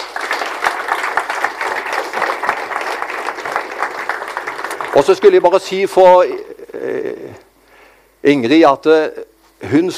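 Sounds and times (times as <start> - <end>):
audience applause: 0.0 - 5.7
speech: 5.0 - 7.2, 8.2 - 9.9.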